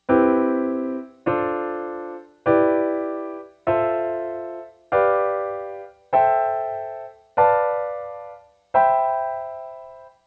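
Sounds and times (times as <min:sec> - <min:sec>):
seventh chords in a major scale: 0:00.0 - 0:10.2.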